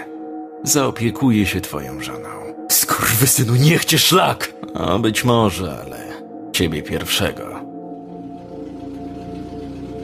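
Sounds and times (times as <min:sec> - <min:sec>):
speech: 0:00.6 - 0:07.6
running engine droning: 0:05.5 - 0:10.0.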